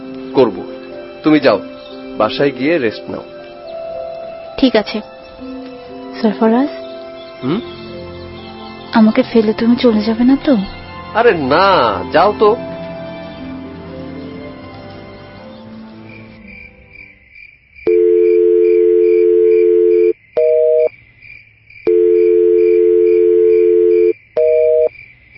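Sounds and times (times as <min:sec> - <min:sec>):
speech: 0:00.4 - 0:03.4, 0:04.6 - 0:05.6, 0:06.2 - 0:06.8, 0:07.4 - 0:07.8, 0:08.9 - 0:12.7
long steady low phone tones each ending with a short blip: 0:17.9 - 0:20.9, 0:21.9 - 0:24.9.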